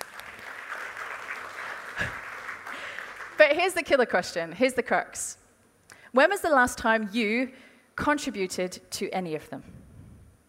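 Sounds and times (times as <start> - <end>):
audience applause: 0.0 - 3.4
speech: 3.4 - 5.4, 6.1 - 9.8.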